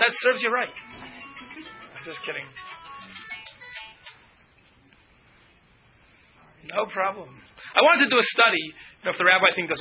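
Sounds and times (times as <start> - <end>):
speech: 0.0 - 0.9, 1.6 - 3.2, 6.6 - 9.7
cell phone ringtone playing a short electronic melody: 0.8 - 4.2.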